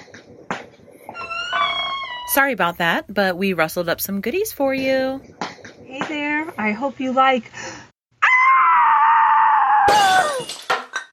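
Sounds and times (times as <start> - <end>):
speech: 2.3 - 7.8
woman screaming: 8.2 - 10.5
bowl crashing to the floor and shattering: 9.9 - 11.1
clattering bits of breakage: 10.0 - 11.1.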